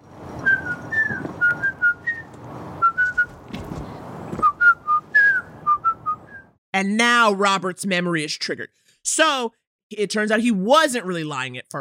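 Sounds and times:
person whistling a short wandering tune: 0:00.4 - 0:03.3, 0:04.4 - 0:06.6
speech: 0:06.8 - 0:11.7.

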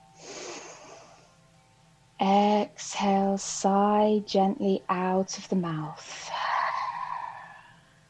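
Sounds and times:
slow gentle inhale through the nose: 0:00.1 - 0:01.4
speech: 0:02.2 - 0:06.4.

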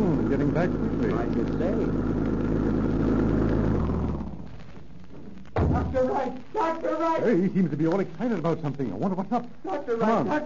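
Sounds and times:
car engine rumbling and slowing to idle: 0:00.0 - 0:06.1
speech: 0:00.6 - 0:02.2, 0:06.2 - 0:10.4.

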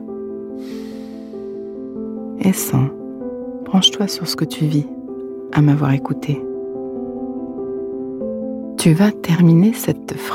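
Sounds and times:
slow exhalation during a guided breathing exercise: 0:00.6 - 0:01.9
speech: 0:02.4 - 0:03.0, 0:03.7 - 0:05.0, 0:05.6 - 0:06.5, 0:08.8 - 0:10.3.

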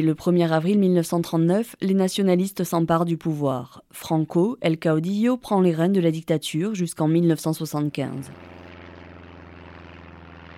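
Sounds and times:
speech: 0:00.0 - 0:08.6
small propeller airplane engine droning: 0:07.5 - 0:10.5.

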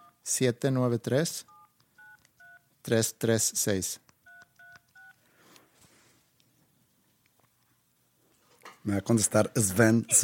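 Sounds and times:
telephone keypad tones dialed on a phone set to speakerphone: 0:00.0 - 0:00.2, 0:01.5 - 0:02.7, 0:04.2 - 0:05.2
quiet noise: 0:00.0 - 0:10.2
speech: 0:00.2 - 0:01.5, 0:02.8 - 0:04.0, 0:08.8 - 0:10.2.

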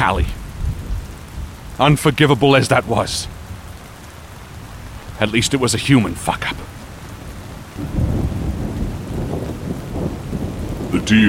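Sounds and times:
speech: 0:00.0 - 0:00.4, 0:01.8 - 0:03.4, 0:05.2 - 0:06.6, 0:11.0 - 0:11.2
heavy rain pouring: 0:00.0 - 0:11.2.

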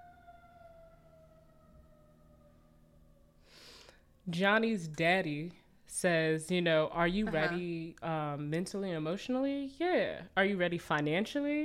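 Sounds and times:
distant ambulance siren passing by: 0:00.0 - 0:04.3
speech: 0:04.3 - 0:11.6.

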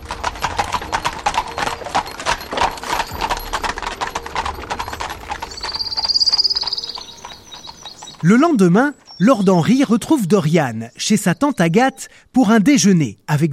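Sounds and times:
horse hooves trotting pulling a cabriolet: 0:00.0 - 0:10.4
speech: 0:08.2 - 0:13.5.

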